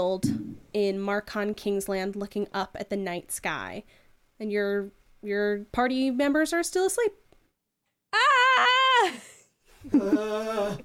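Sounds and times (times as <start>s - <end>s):
speech: 0.0s - 7.2s, 8.1s - 10.8s
lower strained cry: 8.1s - 10.8s
person screaming: 8.2s - 9.3s.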